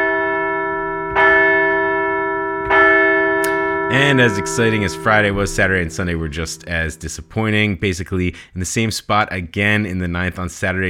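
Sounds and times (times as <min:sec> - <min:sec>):
large bell ringing: 0:00.0 - 0:08.0
speech: 0:03.9 - 0:10.8.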